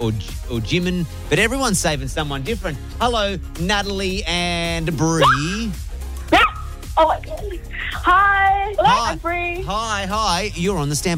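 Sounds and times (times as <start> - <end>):
speech: 0.0 - 5.9, 7.0 - 11.1
dog giving sharp high barks: 5.2 - 5.5, 6.3 - 6.8.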